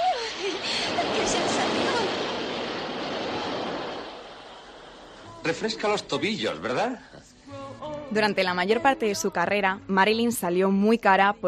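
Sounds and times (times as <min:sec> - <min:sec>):
subway train passing beneath a street grate: 0:00.0 - 0:05.5
speech: 0:05.4 - 0:07.3, 0:08.1 - 0:11.4.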